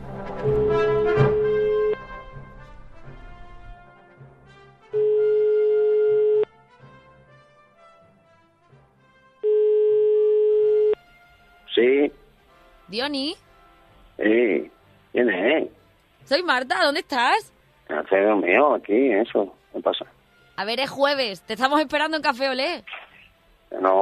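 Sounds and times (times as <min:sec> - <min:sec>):
faint music: 0:00.0 - 0:24.0
telephone ringback tones as a call is connected: 0:00.4 - 0:02.0, 0:05.0 - 0:06.5, 0:09.4 - 0:11.0
speech: 0:12.9 - 0:13.4, 0:14.2 - 0:17.5, 0:18.1 - 0:23.0, 0:23.8 - 0:24.0.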